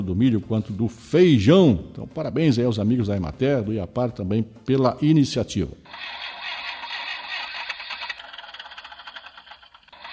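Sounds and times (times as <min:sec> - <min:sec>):
speech: 0:00.0 - 0:06.2
tractor engine cranking without catching: 0:05.9 - 0:10.1.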